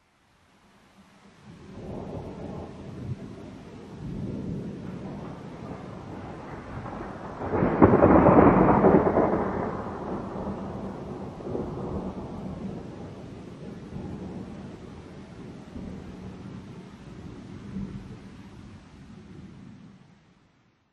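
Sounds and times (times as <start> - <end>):
thunder: 1.6 - 18.2.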